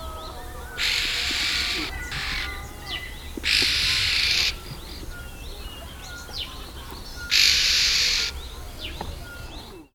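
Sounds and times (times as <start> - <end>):
Red-billed Oxpecker calling: 0.1 - 9.8.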